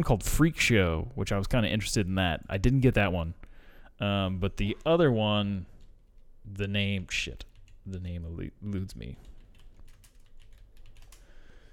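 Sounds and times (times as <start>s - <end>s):
speech: 0.0s - 3.4s, 4.0s - 5.7s, 6.5s - 9.3s
typing on a computer keyboard: 9.2s - 11.4s.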